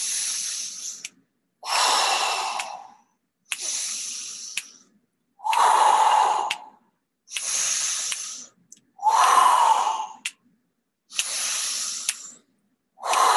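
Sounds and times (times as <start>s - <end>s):
deep breaths in and out during a guided breathing exercise: 0.0s - 10.4s, 11.1s - 13.3s.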